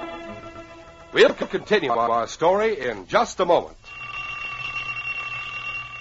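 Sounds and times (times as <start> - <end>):
speech: 1.1 - 3.8
old alarm clock ringing with shrill metallic clatter: 3.9 - 5.9.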